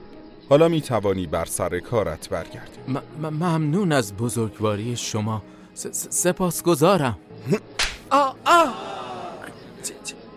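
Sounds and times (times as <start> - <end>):
speech: 0.5 - 9.0
sharp slap across the face: 7.8 - 8.1
short pained vocal cries: 8.1 - 9.8.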